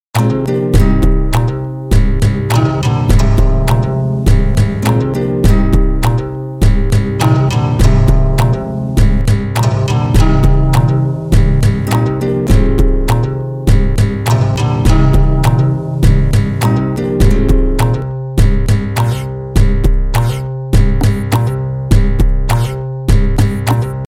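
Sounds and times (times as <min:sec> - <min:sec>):
guitar tuning: 0:00.2 - 0:24.0.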